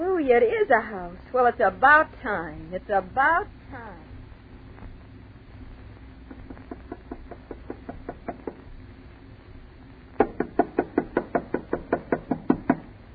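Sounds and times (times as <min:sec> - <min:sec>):
speech: 0:00.3 - 0:04.1
knuckles knocking on a wooden door: 0:06.3 - 0:08.6, 0:10.2 - 0:12.9.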